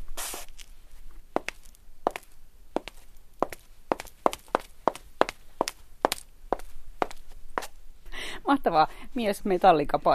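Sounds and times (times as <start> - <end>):
white high heels clicking on a tile surface: 1.4 - 7.2
speech: 8.5 - 10.1.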